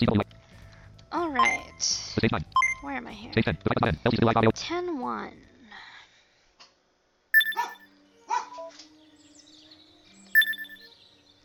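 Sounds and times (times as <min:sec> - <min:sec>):
speech: 0:00.0 - 0:00.3, 0:01.2 - 0:05.5
dog barking and yipping: 0:07.6 - 0:08.7.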